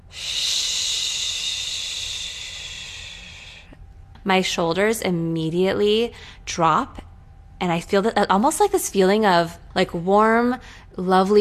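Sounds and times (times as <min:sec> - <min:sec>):
extended exhale with shushing: 0:00.1 - 0:03.8
speech: 0:04.2 - 0:07.0, 0:07.6 - 0:11.3.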